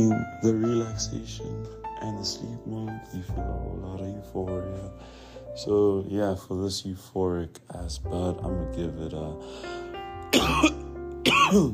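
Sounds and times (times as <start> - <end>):
speech: 0.0 - 10.8, 11.5 - 11.7
person coughing while reviewing a cannabis bud: 10.3 - 11.7.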